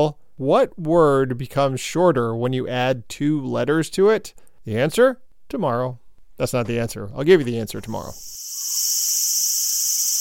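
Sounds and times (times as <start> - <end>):
speech: 0.0 - 8.4
cicada buzzing: 8.0 - 10.2.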